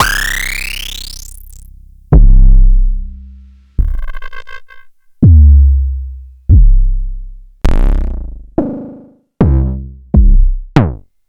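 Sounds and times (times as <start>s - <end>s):
kick drum: 2.1s - 3.2s, 5.2s - 5.9s, 6.5s - 8.8s, 9.4s - 11.1s.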